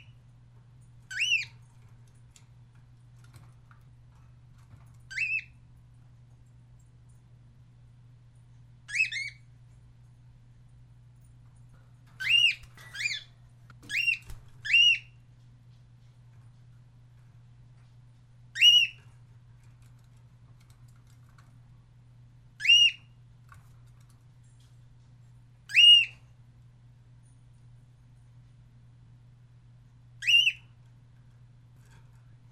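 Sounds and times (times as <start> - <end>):
cockatiel parrot calls: 1.1 - 1.5, 5.1 - 5.5, 8.9 - 9.4, 13.9 - 15.1, 18.5 - 19.0, 22.6 - 23.1, 25.7 - 26.2, 30.2 - 30.7.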